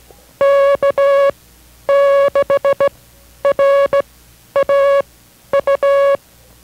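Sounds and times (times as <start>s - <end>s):
Morse code beeps sending a station identification: 0.4s - 1.3s, 1.9s - 2.9s, 3.5s - 4.0s, 4.6s - 6.2s.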